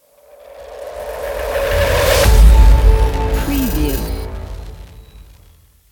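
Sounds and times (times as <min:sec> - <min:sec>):
hybrid and glitch logo sting: 0:02.2 - 0:05.6.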